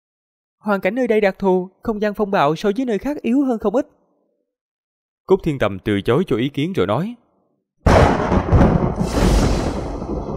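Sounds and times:
speech: 0:00.6 - 0:04.0, 0:05.3 - 0:07.2
continuous thunder-like rumbling echoing from a canyon: 0:07.9 - 0:10.3.

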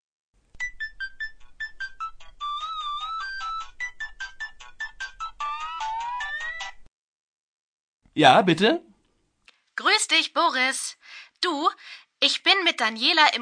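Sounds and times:
phone ringing for an incoming call with a bright electronic ringtone melody: 0:00.6 - 0:06.9
speech: 0:08.2 - 0:08.9, 0:10.1 - 0:13.4.

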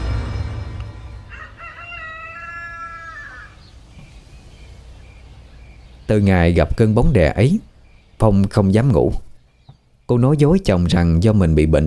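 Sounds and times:
low rumbling noise: 0:00.0 - 0:08.3
rooster crowing behind a house: 0:00.9 - 0:03.7
speech: 0:06.1 - 0:09.3, 0:10.1 - 0:11.8.

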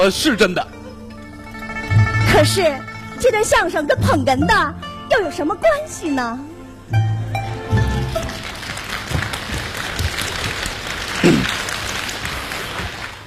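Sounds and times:
speech: 0:00.0 - 0:00.8, 0:02.3 - 0:07.1
audience applause at a crosstalk comedy show: 0:07.7 - 0:13.2.

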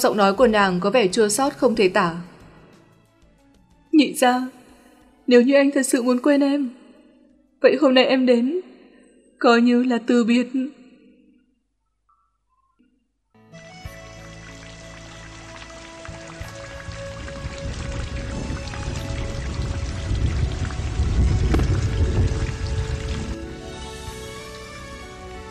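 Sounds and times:
speech: 0:00.0 - 0:02.3, 0:04.0 - 0:04.6, 0:05.3 - 0:06.8, 0:07.6 - 0:08.7, 0:09.4 - 0:10.8
heavy pouring rain in a night storm: 0:13.9 - 0:25.3
deep thunder rumbling: 0:16.8 - 0:23.4
gusting wind in a night storm: 0:16.8 - 0:23.4.

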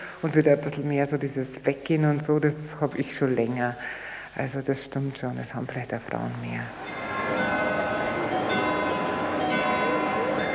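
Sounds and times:
speech: 0:00.2 - 0:07.0
murmur of tourists: 0:05.4 - 0:10.5
glockenspiel bells on neo-Gothic town hall in Munich chiming: 0:06.7 - 0:10.5.

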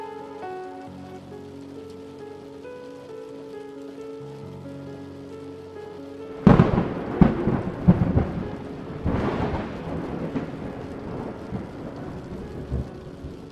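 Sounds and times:
steady rain: 0:00.0 - 0:13.5
thunder cracks and deep rolling rumbles: 0:06.4 - 0:13.5.

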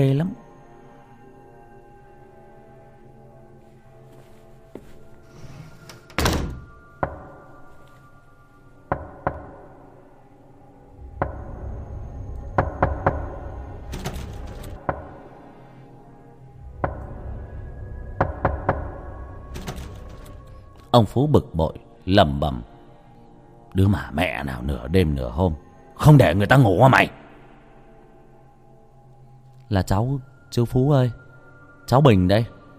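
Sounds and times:
speech: 0:00.0 - 0:00.4, 0:21.0 - 0:22.7, 0:23.7 - 0:27.2, 0:29.7 - 0:31.2, 0:31.9 - 0:32.6
knocking on a door on a still quiet night: 0:08.9 - 0:09.6, 0:12.6 - 0:13.4, 0:18.2 - 0:19.0.

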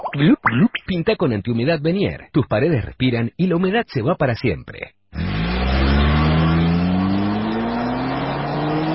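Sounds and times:
speech: 0:00.2 - 0:05.4
car engine revving at high RPM: 0:05.2 - 0:08.9.

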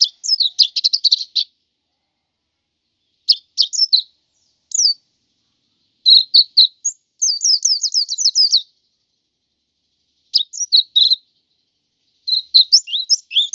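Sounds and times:
white-eye twittering and chattering: 0:00.0 - 0:01.5, 0:03.0 - 0:13.5.

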